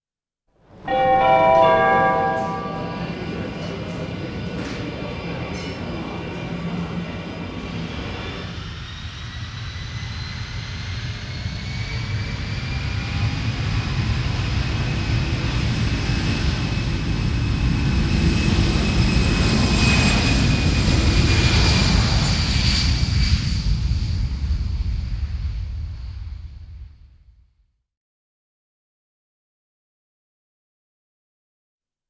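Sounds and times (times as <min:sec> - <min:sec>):
airport ambience: 0:00.7 - 0:08.8
airplane taking off: 0:00.8 - 0:26.8.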